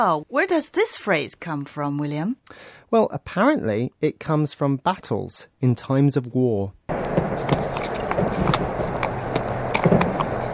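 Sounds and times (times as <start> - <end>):
speech: 0.0 - 7.6
several horses' hooves clip-clopping: 6.9 - 10.5
steady rumbling background: 6.9 - 10.5.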